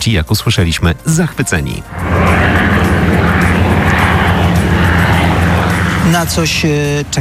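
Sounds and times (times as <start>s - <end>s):
speech: 0.0s - 2.9s, 6.1s - 7.1s
military aircraft engine drone: 1.8s - 7.1s.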